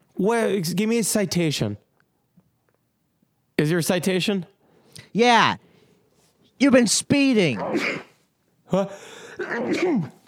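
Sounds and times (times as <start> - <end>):
speech: 0.2 - 1.8, 3.6 - 5.7, 6.6 - 8.1, 8.7 - 10.2
person sneezing into an elbow: 7.6 - 8.2, 8.8 - 10.2.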